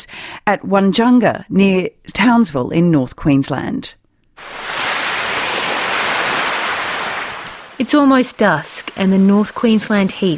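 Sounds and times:
speech: 0.0 - 4.6, 7.8 - 10.3
ocean surf at a small campsite at Wunjunga near Townsville North Queensland: 4.4 - 10.3.

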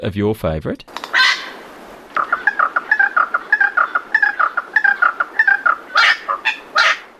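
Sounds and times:
speech: 0.0 - 1.2
little wattlebird calling with harsh clucking notes: 0.9 - 7.1.

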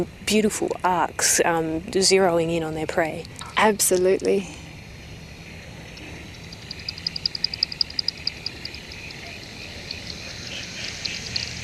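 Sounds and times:
speech: 0.0 - 4.6
steady hiss: 1.4 - 11.6
microbat echolocation clicks through a bat detector above a reservoir: 5.9 - 11.6.

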